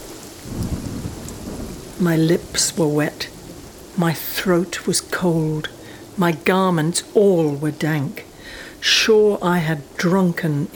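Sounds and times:
low rumbling thunder: 0:00.0 - 0:06.2
steady rain: 0:00.0 - 0:10.7
speech: 0:02.0 - 0:03.3, 0:04.0 - 0:10.7.

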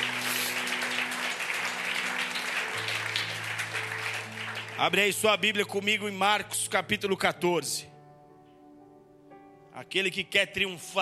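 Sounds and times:
audience applause during a sermon: 0:00.0 - 0:05.2
sustained low keyboard or organ chords: 0:00.0 - 0:11.0
speech: 0:04.8 - 0:07.9, 0:09.8 - 0:11.0.

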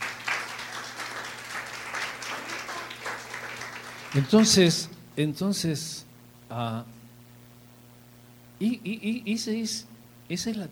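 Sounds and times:
audience applauding: 0:00.0 - 0:04.9
speech: 0:04.1 - 0:07.0, 0:08.6 - 0:10.7
low hum: 0:05.9 - 0:10.3.

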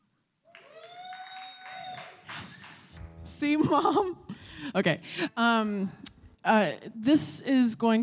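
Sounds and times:
audience applause: 0:00.5 - 0:03.2
speech: 0:03.4 - 0:08.0.

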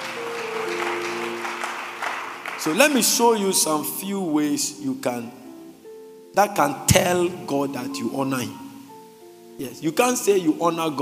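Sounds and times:
crowd clapping as an offering: 0:00.0 - 0:03.4
sustained musical tone: 0:00.0 - 0:10.0
speech: 0:02.6 - 0:05.4, 0:06.4 - 0:08.6, 0:09.6 - 0:11.0.

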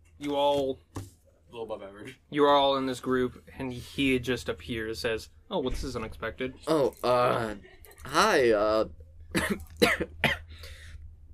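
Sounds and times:
speech: 0:00.2 - 0:10.4
sick man coughing: 0:09.4 - 0:10.5.

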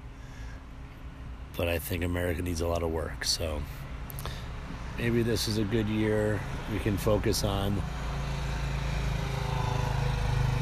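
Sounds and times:
speech: 0:01.6 - 0:03.9, 0:05.0 - 0:08.0
small motorcycle engine cruising past: 0:07.6 - 0:10.6.

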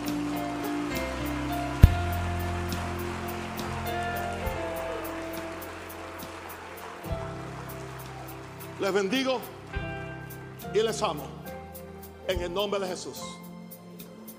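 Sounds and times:
large crowd applauding: 0:00.0 - 0:11.3
speech: 0:08.8 - 0:09.6, 0:10.8 - 0:11.4, 0:12.3 - 0:13.4.

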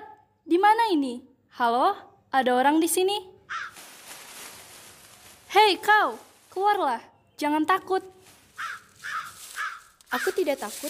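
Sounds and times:
speech: 0:00.5 - 0:03.7, 0:05.6 - 0:08.2, 0:10.1 - 0:10.8
crow-like bird cawing: 0:03.5 - 0:04.0, 0:08.5 - 0:10.5.

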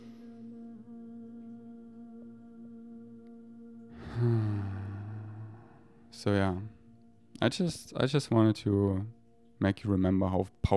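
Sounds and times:
deep breath let out as a low voiced sigh: 0:03.9 - 0:06.0
speech: 0:04.2 - 0:04.4, 0:06.2 - 0:06.8, 0:07.4 - 0:10.7.

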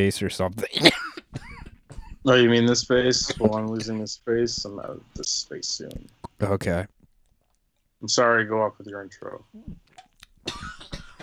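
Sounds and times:
speech: 0:00.0 - 0:01.1, 0:02.2 - 0:07.0, 0:08.0 - 0:09.9
person coughing: 0:00.6 - 0:02.3, 0:03.0 - 0:04.1, 0:10.4 - 0:11.2.

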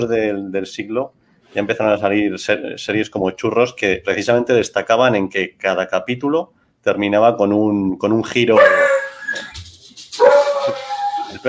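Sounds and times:
speech: 0:00.0 - 0:09.5
pet dog howling: 0:08.6 - 0:11.4.

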